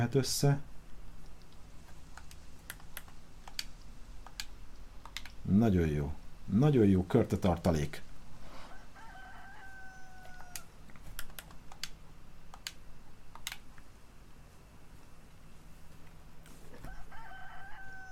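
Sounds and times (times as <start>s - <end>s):
speech: 0.0s - 0.7s, 5.5s - 8.1s
computer keyboard typing clicks: 1.4s - 5.4s, 10.4s - 13.8s
rooster crowing: 8.5s - 10.8s, 16.7s - 18.1s.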